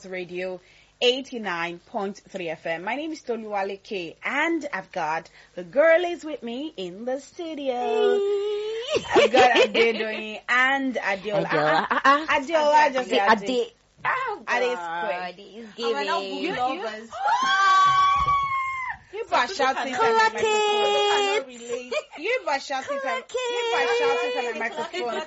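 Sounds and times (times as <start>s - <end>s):
speech: 0.0s - 18.1s, 19.2s - 25.2s
laughter-like bursts: 8.8s - 10.4s, 11.4s - 12.4s, 23.8s - 25.2s
several people shouting excitedly into a microphone: 17.1s - 19.0s.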